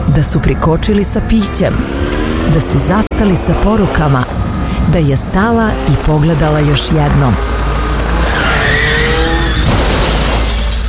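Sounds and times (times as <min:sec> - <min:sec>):
heavy engine and road rumble: 0:00.0 - 0:10.8
speech: 0:00.2 - 0:07.6
car tires squealing in a skid under hard braking: 0:07.6 - 0:10.8.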